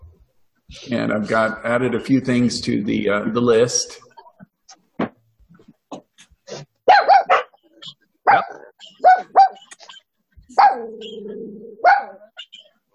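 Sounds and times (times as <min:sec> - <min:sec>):
speech: 0:00.7 - 0:04.0
dog barking: 0:06.8 - 0:11.2, 0:11.8 - 0:12.6
dog bark-whine: 0:06.8 - 0:12.6.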